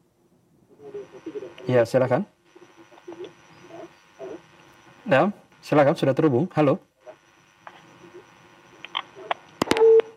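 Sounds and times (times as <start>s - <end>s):
brief steady telephone tone: 0.8s - 10.1s
speech: 1.1s - 2.4s, 5.1s - 6.9s
telephone line clicks as a phone-in call cuts off: 7.6s - 10.1s.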